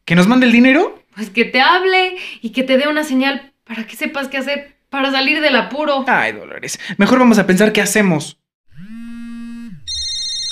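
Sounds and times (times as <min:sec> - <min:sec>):
speech: 0:00.1 - 0:08.9
bright piercing high-pitched tone: 0:08.8 - 0:10.5
telephone ringing with a loud electronic ringtone: 0:09.9 - 0:10.5.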